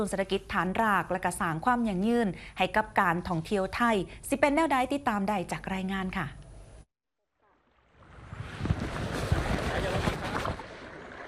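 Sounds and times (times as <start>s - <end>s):
speech: 0.0s - 6.4s
lake water splashing and sloshing: 7.5s - 11.2s
wind rushing across an open lake: 8.0s - 11.1s.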